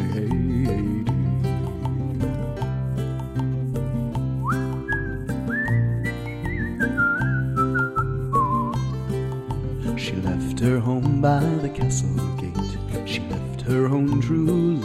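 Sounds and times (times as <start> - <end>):
steady rhythmic instrumental music: 0.0 - 14.8
whistled melody: 4.3 - 9.0
speech: 11.3 - 14.6.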